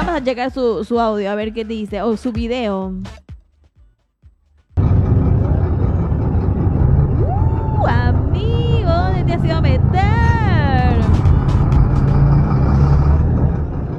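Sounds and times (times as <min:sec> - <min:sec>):
speech: 0:00.2 - 0:03.2, 0:09.3 - 0:10.3
congested traffic jam of trucks, taxis and trufis idling on the road to La Guardia: 0:04.8 - 0:13.9.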